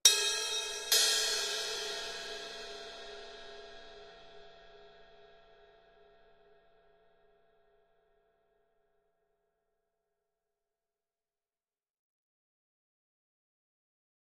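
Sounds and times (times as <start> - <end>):
drum cymbal accent hit: 0.1 - 4.0.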